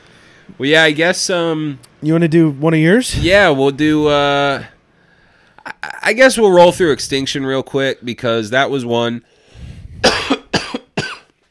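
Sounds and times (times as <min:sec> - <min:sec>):
speech: 0:00.5 - 0:04.7, 0:06.0 - 0:09.3
smoker's harsh raspy phlegmy coughs: 0:10.0 - 0:11.4.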